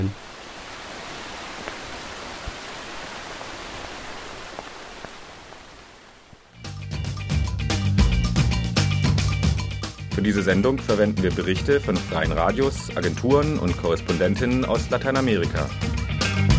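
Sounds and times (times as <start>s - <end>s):
steady rain in Santa Anita La Union: 0.0s - 6.6s
music: 6.6s - 16.5s
speech: 10.2s - 16.0s.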